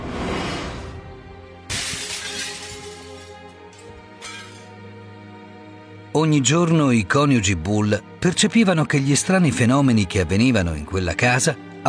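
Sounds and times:
bright tinkle of glass shards scattering down: 0:01.7 - 0:03.4
glasses smashing against a wall: 0:01.7 - 0:03.4
speech: 0:06.2 - 0:11.8.

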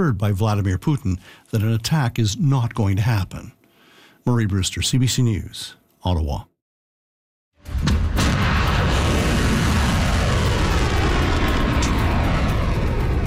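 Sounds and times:
speech: 0:00.0 - 0:03.6, 0:04.2 - 0:06.5
volley of Iranian ballistic missiles roaring: 0:07.7 - 0:13.2.

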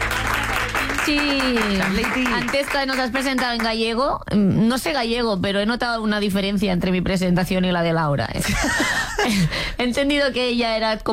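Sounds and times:
audience applause: 0:00.0 - 0:03.2
speech: 0:01.1 - 0:11.1.

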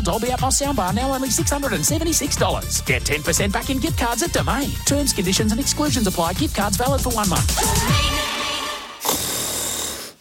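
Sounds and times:
speech: 0:00.0 - 0:08.3
person snoring: 0:07.6 - 0:10.2.

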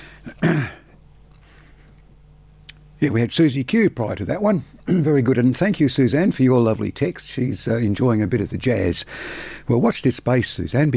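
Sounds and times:
throat clearing: 0:00.3 - 0:00.9, 0:04.9 - 0:05.1
speech: 0:03.0 - 0:10.9.

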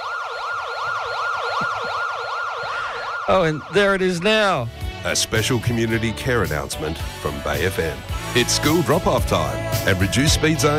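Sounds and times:
ambulance siren yelp: 0:00.0 - 0:04.9
speech: 0:03.3 - 0:10.7.

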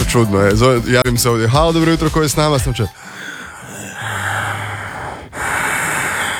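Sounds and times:
speech: 0:00.1 - 0:03.3
caller's menacing heavy breathing into a telephone: 0:02.8 - 0:06.3.

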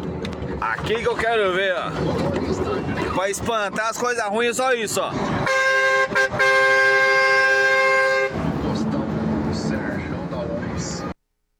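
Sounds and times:
steady rumble of engine and road noise: 0:00.0 - 0:11.2
speech: 0:00.6 - 0:06.9
truck air horn blast: 0:05.4 - 0:08.5.

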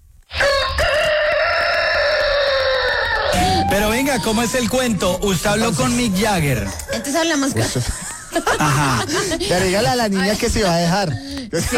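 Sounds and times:
rooster crowing: 0:00.3 - 0:04.8
speech: 0:03.7 - 0:11.7
laughter: 0:06.5 - 0:10.3.

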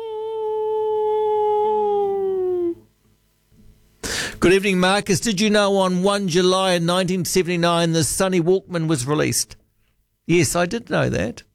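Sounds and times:
person imitating a wolf howl: 0:00.0 - 0:02.9
speech: 0:04.4 - 0:09.6, 0:10.3 - 0:11.5.

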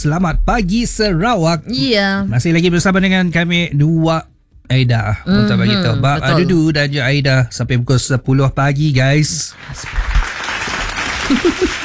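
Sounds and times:
speech: 0:00.0 - 0:10.2, 0:11.3 - 0:11.8
laughter: 0:05.3 - 0:06.6, 0:11.0 - 0:11.8
hand clapping and applause: 0:09.4 - 0:11.8.

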